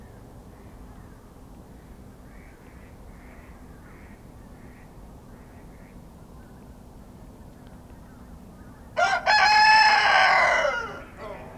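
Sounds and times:
rooster crowing in a pen at a small farmhouse in Kawcze, Poland: 9.0 - 11.5.

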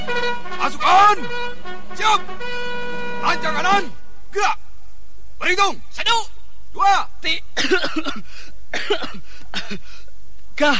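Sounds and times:
speech: 0.7 - 2.6, 3.2 - 4.6, 5.4 - 10.0, 10.6 - 10.7
person in drill formation coughing harshly: 7.6 - 9.9.

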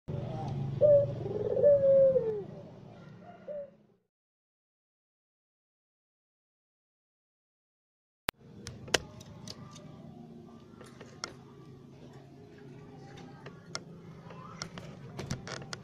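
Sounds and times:
white Barbary dove cooing: 0.1 - 3.8.

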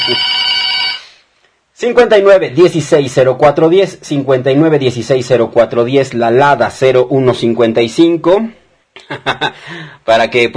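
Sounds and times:
telephone ring sound effect: 0.0 - 1.2
speech: 0.1 - 0.3, 1.8 - 10.5.

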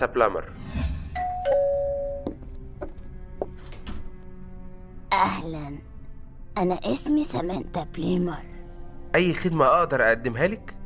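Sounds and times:
speech: 0.0 - 0.8, 5.2 - 5.9, 6.6 - 8.5, 9.1 - 10.8
two-tone doorbell chime in a home: 1.2 - 2.3.

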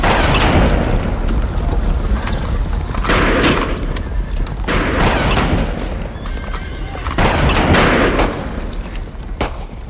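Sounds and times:
rifle shots fired on a country road in wartime: 0.0 - 1.1, 3.0 - 4.0, 4.6 - 6.3, 7.0 - 9.8
loud continuous rumbling wash of noise: 0.0 - 9.8.

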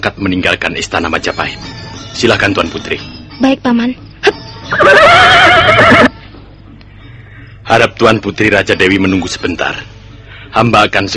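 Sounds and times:
speech: 0.0 - 6.2, 7.7 - 11.1
horse neighing: 4.7 - 6.2.

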